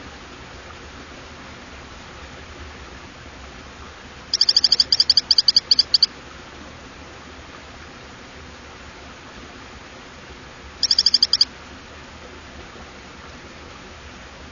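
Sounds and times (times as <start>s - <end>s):
background hiss: 0.0s - 14.5s
Hylodes phyllodes frog giving sharp high-pitched whistled notes: 4.3s - 6.1s, 10.8s - 11.5s.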